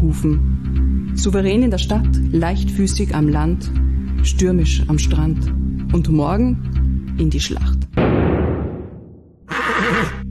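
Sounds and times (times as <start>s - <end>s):
speech: 0.1s - 8.0s
horse whinnying: 9.5s - 10.2s.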